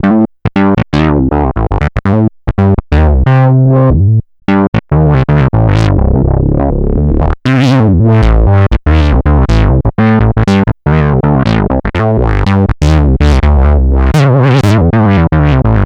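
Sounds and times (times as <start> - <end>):
synth bass loop in A minor: 0.0 - 15.8.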